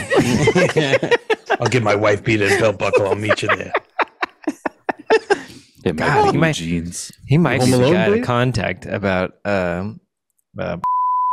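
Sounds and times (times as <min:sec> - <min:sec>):
laughter: 0:00.0 - 0:06.5, 0:07.6 - 0:08.3
speech: 0:00.2 - 0:03.8, 0:05.8 - 0:10.0, 0:10.6 - 0:10.9
high-pitched censor bleep: 0:10.8 - 0:11.3.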